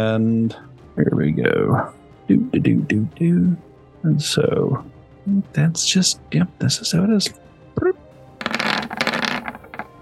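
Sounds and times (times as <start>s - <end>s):
speech: 0.0s - 8.0s
dice rattling and tumbling across a hard tabletop: 8.4s - 10.0s.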